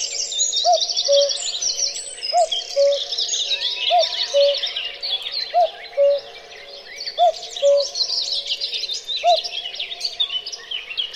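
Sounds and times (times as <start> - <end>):
high chirping birdsong: 0.0 - 11.1
cuckoo calling: 0.6 - 1.4, 2.3 - 4.6, 5.5 - 6.3, 7.2 - 8.0, 9.2 - 9.5.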